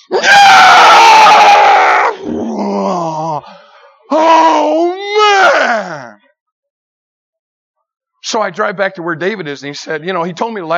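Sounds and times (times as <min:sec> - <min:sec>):
speech: 0:00.0 - 0:00.4, 0:08.3 - 0:10.7
man screaming as he charges down a hill: 0:00.1 - 0:03.5, 0:04.1 - 0:06.2.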